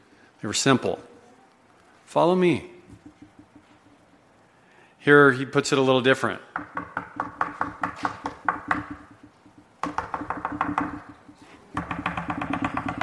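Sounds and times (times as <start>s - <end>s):
speech: 0.4s - 1.1s, 2.1s - 2.7s, 5.0s - 6.8s
rapid sharp knocking: 2.9s - 4.3s, 6.5s - 13.0s.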